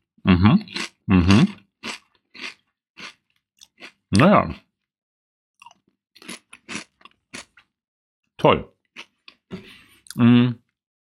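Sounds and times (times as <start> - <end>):
chewing crunchy days-old chips: 0.6 - 4.6, 5.6 - 7.7, 8.9 - 10.2
speech: 4.2 - 4.6, 8.4 - 8.8, 10.2 - 10.6.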